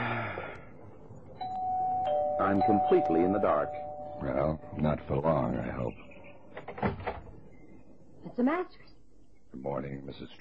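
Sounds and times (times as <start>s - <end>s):
doorbell chiming: 1.4s - 5.1s
speech: 2.4s - 6.1s, 8.3s - 8.9s, 9.5s - 10.3s.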